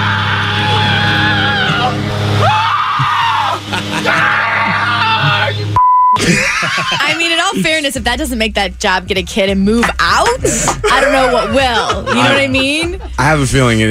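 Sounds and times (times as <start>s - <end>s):
person screaming while playing video games: 0.0s - 5.7s
laughter: 2.8s - 8.0s, 9.9s - 13.6s
short electronic beep: 5.8s - 6.2s
speech: 7.6s - 13.8s.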